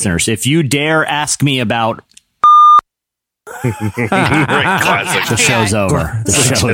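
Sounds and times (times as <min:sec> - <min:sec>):
speech: 0:00.0 - 0:02.1, 0:03.6 - 0:06.7
censorship bleep: 0:02.4 - 0:02.8
several people laughing: 0:03.5 - 0:06.5.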